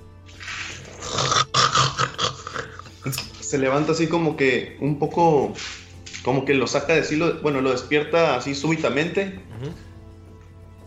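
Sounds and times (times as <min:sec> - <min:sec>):
person snoring loudly: 0:00.4 - 0:03.1, 0:09.5 - 0:09.9
speech: 0:03.1 - 0:09.9.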